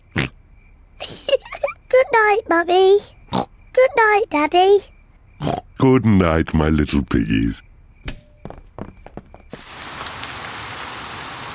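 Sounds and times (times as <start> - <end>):
speech: 2.1 - 3.2, 3.8 - 7.7
rain falling: 8.8 - 11.5.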